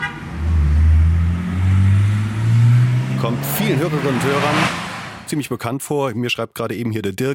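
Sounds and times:
car engine revving as a driver speeds through town: 0:00.0 - 0:05.3
speech: 0:03.2 - 0:07.3.

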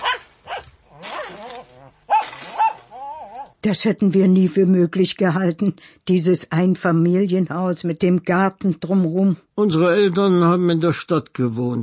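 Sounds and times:
poodle barking at the fence: 0:00.0 - 0:03.4
speech: 0:03.6 - 0:11.8.

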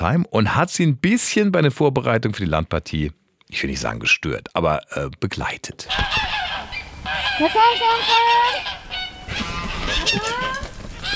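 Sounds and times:
speech: 0:00.0 - 0:06.4, 0:07.4 - 0:10.7
geese honking: 0:05.9 - 0:11.1.

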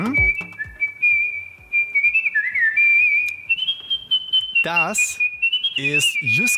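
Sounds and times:
soft rhythmic accompaniment: 0:00.0 - 0:03.6
melodic artistic whistling by a world champion whistler: 0:00.0 - 0:06.5
speech: 0:04.6 - 0:06.5.

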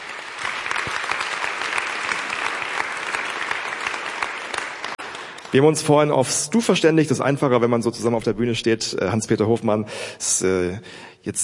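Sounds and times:
sustained applause from a sizeable audience: 0:00.0 - 0:05.7
speech: 0:05.5 - 0:11.4.

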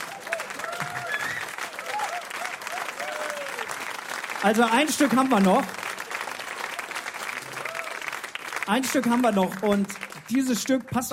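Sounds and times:
faint cheering voices: 0:00.0 - 0:03.8
crowd clapping: 0:00.0 - 0:11.1
whistles: 0:01.1 - 0:01.6
speech: 0:04.4 - 0:05.8, 0:08.7 - 0:11.1.

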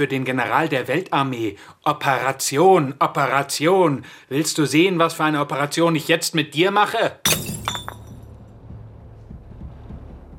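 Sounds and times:
speech: 0:00.0 - 0:07.8
glass beer bottle being smashed: 0:07.3 - 0:08.2
low rumbling: 0:07.6 - 0:10.3.

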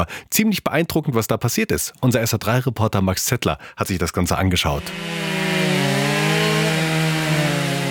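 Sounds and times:
speech: 0:00.0 - 0:05.8
chainsaws carving wood: 0:04.8 - 0:07.8.

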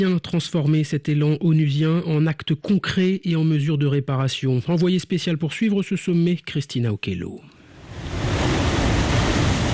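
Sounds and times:
speech: 0:00.0 - 0:08.2
ocean surf washing against the Ghanaian coast at Cape Coast: 0:07.7 - 0:09.7.

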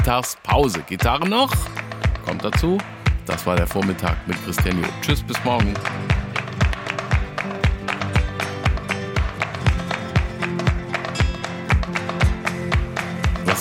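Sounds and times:
speech: 0:00.0 - 0:06.2
musical bed: 0:00.0 - 0:13.5
slow rhythmic hand clapping: 0:00.0 - 0:13.5.

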